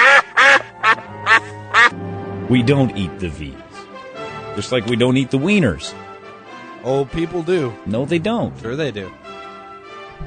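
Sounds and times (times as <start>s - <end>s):
angry geese honking with harsh nasal calls: 0.0s - 2.0s
speech: 2.5s - 3.7s, 4.6s - 6.1s, 6.8s - 9.2s.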